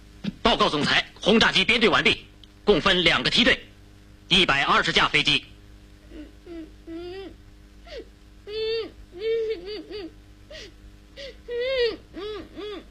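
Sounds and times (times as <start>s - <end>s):
speech: 0.5s - 3.7s, 4.3s - 5.5s
person crying: 6.1s - 12.8s.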